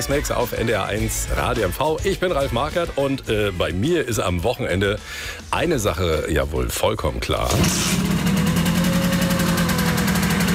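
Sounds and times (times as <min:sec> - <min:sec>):
speech: 0:00.0 - 0:08.2
engine revving as throttle is given: 0:07.5 - 0:10.5.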